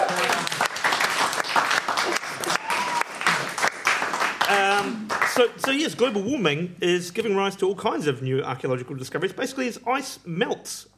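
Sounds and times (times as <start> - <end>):
room full of people applauding: 0.0 - 5.5
speech: 4.8 - 10.9.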